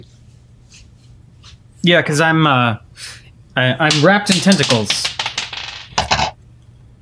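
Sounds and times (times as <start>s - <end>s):
speech: 1.8s - 5.0s
die falling and bouncing on a hard floor: 3.9s - 6.4s.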